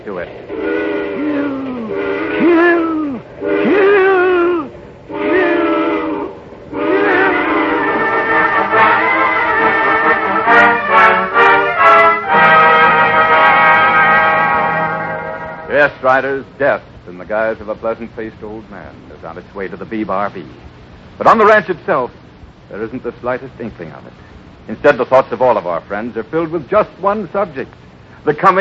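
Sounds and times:
speech: 0.0 - 0.8, 16.0 - 28.5
steam train whistle shrieking: 0.5 - 16.1.

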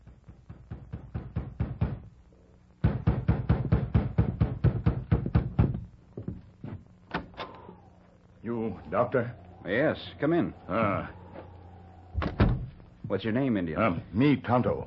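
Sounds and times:
knocks on a wooden door: 0.0 - 2.1, 2.8 - 5.9
speech: 8.7 - 11.2, 13.1 - 14.8.

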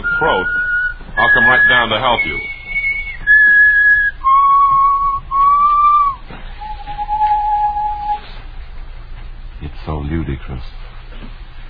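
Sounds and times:
person whistling a slow simple tune: 0.0 - 8.3
speech: 1.4 - 2.6.

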